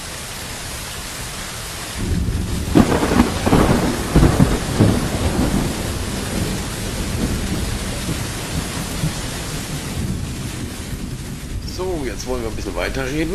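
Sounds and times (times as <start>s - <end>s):
steady dense rain hissing: 0.0s - 13.3s
heavy thunder rumbling outdoors: 1.9s - 13.3s
speech: 12.2s - 13.3s.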